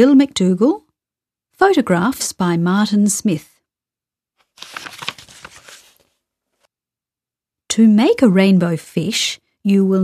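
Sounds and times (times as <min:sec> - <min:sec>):
speech: 0:00.0 - 0:00.8, 0:01.6 - 0:03.5, 0:07.8 - 0:10.0
pages of a book being flipped: 0:04.4 - 0:06.7.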